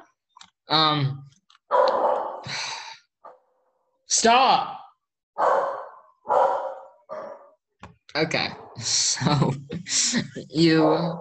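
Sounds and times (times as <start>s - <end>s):
speech: 0.7s - 2.8s, 4.1s - 4.8s, 8.2s - 11.1s
dog yipping: 1.7s - 2.4s, 5.4s - 7.6s
dog barking: 1.7s - 2.5s, 5.4s - 7.6s, 10.8s - 11.1s.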